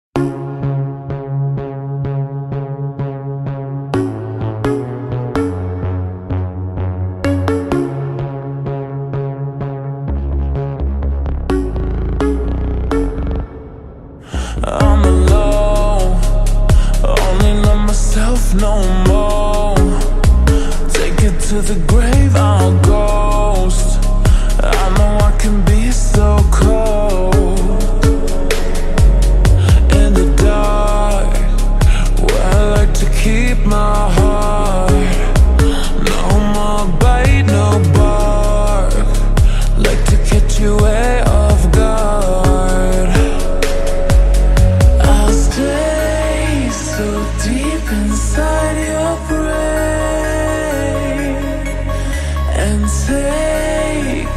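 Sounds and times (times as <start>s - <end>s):
slowed reverb music: 0.2s - 54.3s.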